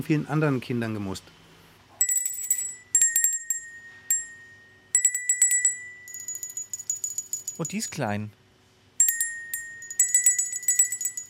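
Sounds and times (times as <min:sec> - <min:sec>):
speech: 0:00.0 - 0:01.4, 0:07.6 - 0:08.4
small table bell ringing: 0:02.0 - 0:08.1, 0:09.0 - 0:11.2.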